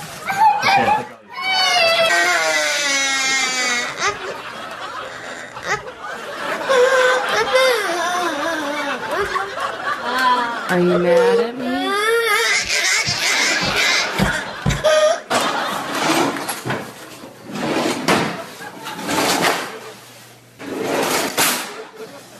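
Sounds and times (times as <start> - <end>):
child crying: 0.3 - 4.4, 5.1 - 5.9, 6.6 - 9.5, 10.1 - 15.3
laughter: 0.6 - 16.5, 18.2 - 20.1, 21.6 - 22.3
speech: 10.8 - 11.5
pretend plastic drawers opened and closed, clattering and scraping: 15.3 - 19.9.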